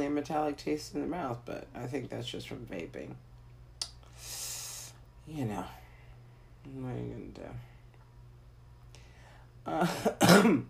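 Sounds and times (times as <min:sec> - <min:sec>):
speech: 0:00.1 - 0:03.3, 0:05.3 - 0:05.8, 0:06.6 - 0:07.7, 0:09.6 - 0:10.6
harsh raspy coughs or throat-clearing: 0:09.8 - 0:10.6.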